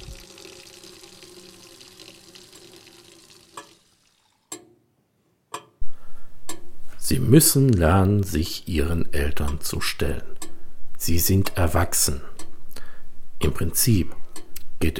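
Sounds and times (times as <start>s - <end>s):
tap water running: 0.0s - 4.6s
speech: 7.1s - 10.3s, 11.0s - 12.3s, 13.4s - 14.2s, 14.8s - 14.9s.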